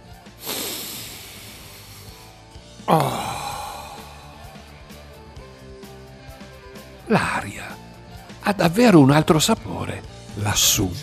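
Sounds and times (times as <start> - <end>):
long deep breath drawn in through the nose: 0.3 - 4.5
speech: 2.9 - 3.3, 7.1 - 7.6, 8.5 - 9.8, 10.4 - 11.0.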